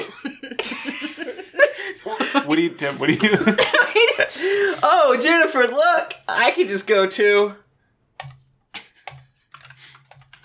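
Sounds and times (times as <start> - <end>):
laughter: 0.0 - 6.8
speech: 2.4 - 3.8, 4.8 - 7.6
typing on a computer keyboard: 8.2 - 10.4.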